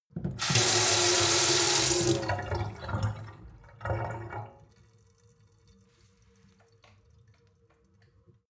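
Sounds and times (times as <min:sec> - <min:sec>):
water flowing hard from a sink: 0:00.4 - 0:03.2.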